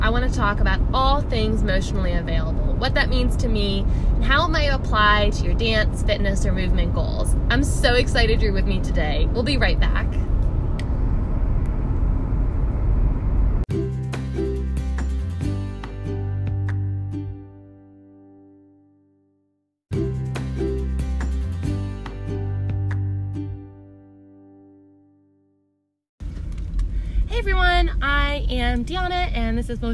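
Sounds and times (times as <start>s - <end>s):
engine and road rumble inside a moving car: 0.0s - 16.8s, 26.2s - 29.9s
speech: 0.1s - 10.3s, 28.5s - 29.9s
short tonal melody: 13.7s - 19.1s, 19.9s - 25.4s.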